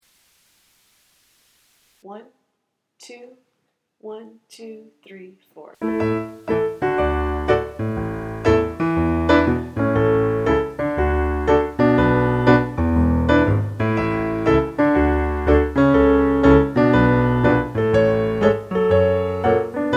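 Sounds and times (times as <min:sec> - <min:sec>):
piano listening exercise: 0:05.8 - 0:19.9.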